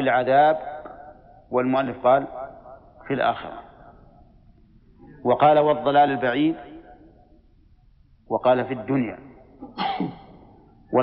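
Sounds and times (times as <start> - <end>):
speech: 0.0 - 0.7, 1.5 - 2.4, 3.1 - 3.6, 5.2 - 6.7, 8.3 - 10.2
person sneezing: 9.6 - 10.5.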